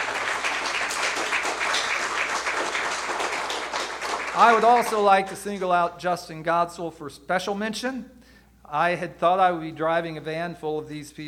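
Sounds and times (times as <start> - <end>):
church audience applause: 0.0 - 5.4
speech: 4.4 - 11.2.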